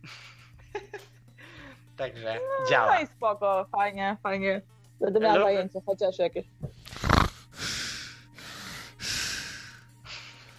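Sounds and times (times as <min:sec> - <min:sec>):
speech: 0:02.0 - 0:06.6
heavy huffing breaths with snort-like puff: 0:06.8 - 0:10.5.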